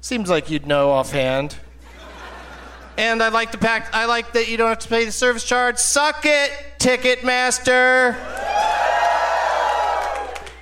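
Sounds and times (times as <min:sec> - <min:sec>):
speech: 0:00.0 - 0:01.6, 0:03.0 - 0:08.4
laughter: 0:01.7 - 0:03.6
loud crowd cheering and applauding: 0:08.2 - 0:10.5.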